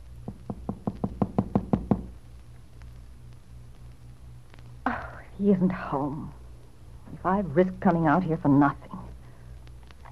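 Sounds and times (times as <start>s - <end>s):
firm knocks on a wooden door: 0.3s - 2.1s
speech: 5.4s - 6.4s, 7.2s - 9.0s.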